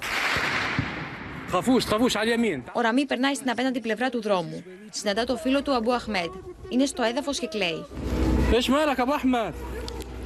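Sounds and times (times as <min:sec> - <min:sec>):
dull gunshots: 0:00.0 - 0:01.6
speech: 0:01.5 - 0:09.8.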